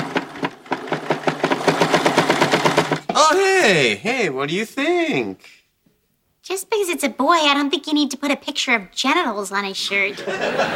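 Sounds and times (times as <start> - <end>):
sewing machine stitching fabric: 0.0 - 3.2
speech: 3.3 - 5.6, 6.4 - 10.7
laughter: 10.0 - 10.7.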